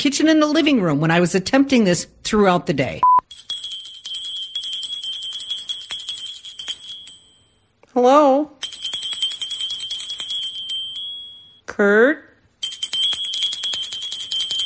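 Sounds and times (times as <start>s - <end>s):
speech: 0.0s - 3.5s, 8.0s - 8.6s, 11.8s - 12.3s
small hand bell ringing in a bright jingle: 3.3s - 7.7s, 8.6s - 11.6s, 12.6s - 14.6s.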